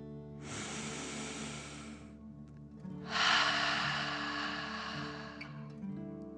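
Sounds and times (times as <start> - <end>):
soft breathing in and out: 0.4 - 2.2, 3.0 - 5.8.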